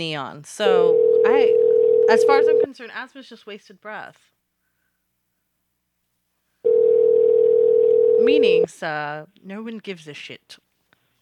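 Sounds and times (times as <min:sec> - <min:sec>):
speech: 0:00.0 - 0:04.3, 0:08.2 - 0:10.6
steady telephone call tone: 0:00.9 - 0:02.7, 0:06.7 - 0:08.6.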